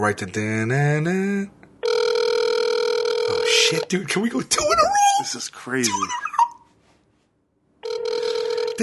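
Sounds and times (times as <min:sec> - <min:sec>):
speech: 0:00.0 - 0:01.6, 0:03.5 - 0:06.2
phone ringback tone on a call to a Long Island number: 0:01.8 - 0:03.8, 0:07.8 - 0:08.8.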